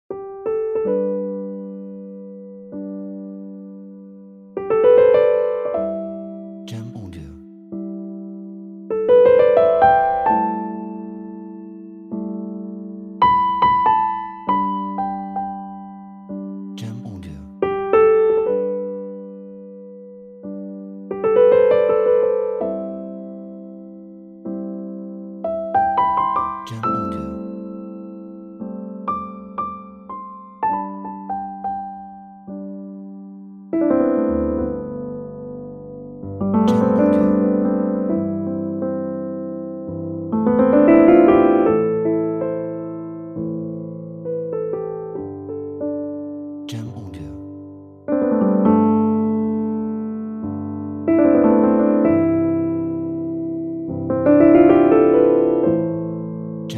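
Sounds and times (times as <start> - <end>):
romantic cinematic piano music: 0.1 - 56.7.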